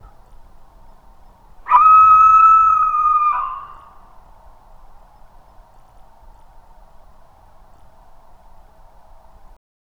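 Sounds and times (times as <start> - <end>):
owl screaming: 1.7 - 4.0.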